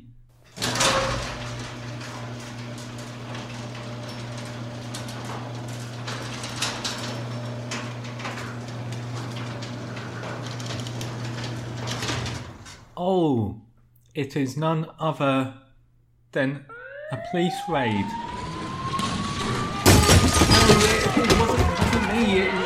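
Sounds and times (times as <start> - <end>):
garage door motor droning as the door opens: 0.3 - 13.0, 18.0 - 22.6
speech: 13.0 - 13.6, 14.2 - 15.6, 16.3 - 18.3.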